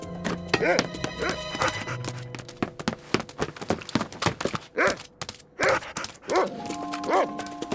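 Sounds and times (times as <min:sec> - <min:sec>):
scuffling and rustling of a running dog: 0:00.3 - 0:07.7
trained dog barking while chasing someone: 0:00.6 - 0:02.1, 0:04.7 - 0:05.0, 0:05.6 - 0:07.7.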